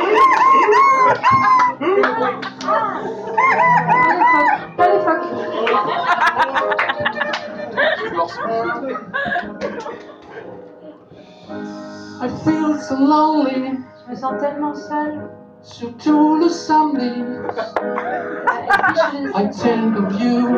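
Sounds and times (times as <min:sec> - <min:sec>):
voice imitating seagull cries: 0:00.0 - 0:01.8, 0:03.4 - 0:04.6
laughter: 0:00.0 - 0:11.0, 0:17.4 - 0:20.5
speech: 0:12.4 - 0:20.5.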